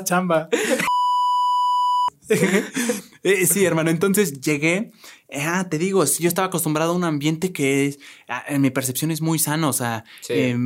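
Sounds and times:
speech: 0.0s - 0.8s, 2.3s - 10.6s
loud steady censorship bleep: 0.8s - 2.2s
laughter: 2.2s - 3.2s.

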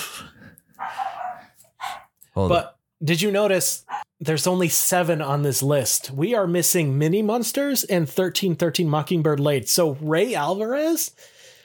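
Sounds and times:
soft breathy noise: 0.0s - 2.1s
dog barking: 0.8s - 2.1s
speech: 2.4s - 11.4s.

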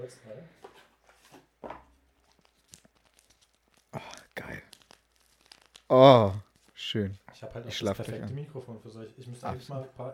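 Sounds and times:
speech: 0.0s - 0.7s, 5.9s - 10.1s
fruit tea bag packet crinkling and rustling: 2.0s - 8.3s
crunching tear: 2.2s - 7.0s.

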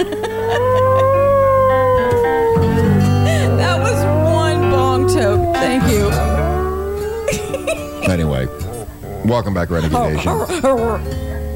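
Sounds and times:
laughter: 0.0s - 1.9s, 7.3s - 11.4s
hound dog howling: 0.0s - 9.0s
low rumbling background: 0.1s - 11.5s
speech: 9.2s - 11.3s.

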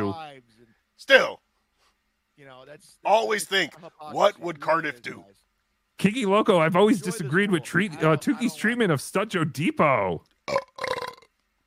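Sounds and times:
speech: 1.0s - 1.4s, 2.4s - 5.4s, 6.0s - 10.9s
laughter: 6.2s - 9.1s
person belching: 10.5s - 11.4s
person gulping: 10.5s - 11.4s.

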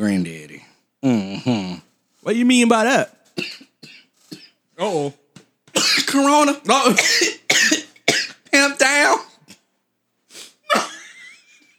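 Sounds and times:
speech: 0.0s - 0.4s, 1.0s - 3.6s, 4.8s - 5.2s, 6.1s - 7.4s, 8.7s - 9.3s
person coughing with breathy inhale and wheezy exhale: 3.4s - 4.6s, 5.8s - 6.2s, 6.9s - 8.4s, 10.7s - 11.1s.

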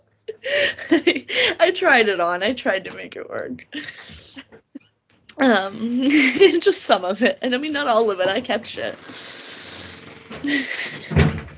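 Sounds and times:
speech: 0.8s - 4.2s, 5.4s - 9.4s, 10.4s - 10.9s
door creaking open with a squeaky groan: 8.1s - 11.5s
door closing with a solid thump: 10.1s - 11.5s.

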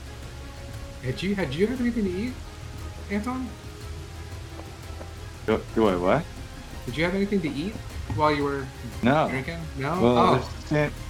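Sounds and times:
rain falling: 0.0s - 11.0s
speech: 1.0s - 2.5s, 3.1s - 3.7s, 5.5s - 11.0s.

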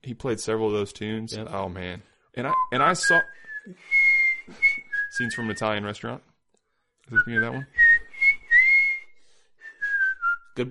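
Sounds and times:
speech: 0.0s - 4.6s, 5.2s - 6.3s, 7.1s - 7.8s
person whistling a tune: 2.5s - 5.8s, 7.1s - 10.6s.

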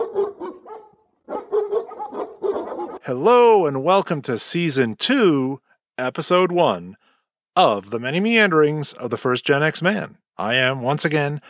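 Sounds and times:
fake dogs barking and yipping: 0.0s - 3.1s
speech: 3.1s - 7.0s, 7.6s - 11.4s.

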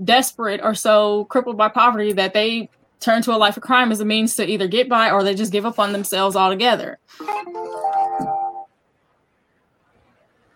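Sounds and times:
speech: 0.0s - 8.3s
mobile phone ringtone: 7.2s - 8.7s.

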